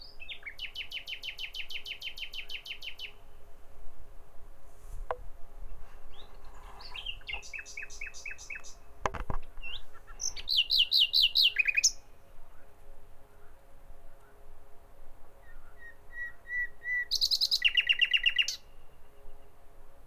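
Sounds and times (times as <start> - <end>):
common nightingale singing: 0.0 - 3.2, 5.6 - 12.1, 15.4 - 18.7.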